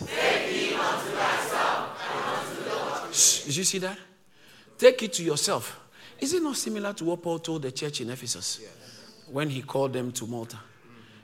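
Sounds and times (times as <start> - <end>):
large group of voices reading scripture aloud in unison: 0.0 - 3.5
speech: 3.2 - 4.1, 4.8 - 10.7.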